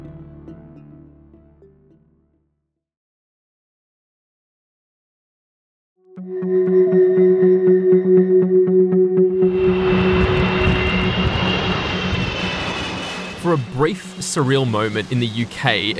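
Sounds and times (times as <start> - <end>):
tonal hum: 6.1 - 14.2
jet airplane engine powering up: 6.2 - 15.9
speech: 13.8 - 15.9.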